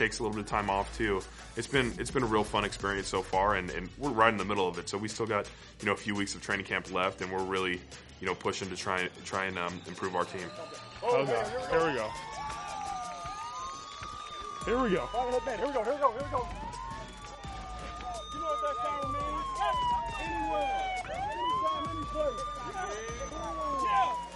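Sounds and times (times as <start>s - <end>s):
speech: 0.0s - 12.4s, 14.6s - 16.7s
crowd noise: 7.8s - 24.3s
siren wailing for a full-speed live tackling drill: 8.9s - 24.3s.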